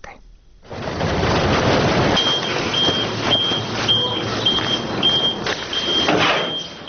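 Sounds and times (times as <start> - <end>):
orange garbage trucks rumbling and idling at a landfill near Tbilisi Georgia: 0.6 - 6.8
trash clattering and dumping from truck beds onto the ground: 0.6 - 6.8
steady garbage truck reversing beeper: 2.2 - 6.8.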